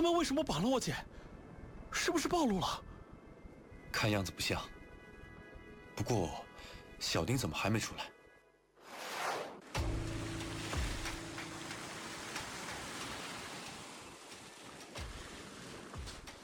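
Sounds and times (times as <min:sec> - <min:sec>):
speech: 0:00.0 - 0:01.3, 0:01.9 - 0:02.9, 0:03.9 - 0:04.8, 0:06.0 - 0:08.2
ocean waves rolling in near the shore: 0:08.8 - 0:16.4.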